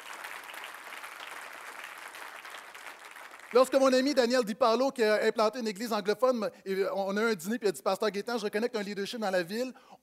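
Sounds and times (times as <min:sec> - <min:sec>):
audience applause at a church gathering: 0:00.0 - 0:04.3
speech: 0:03.5 - 0:10.0.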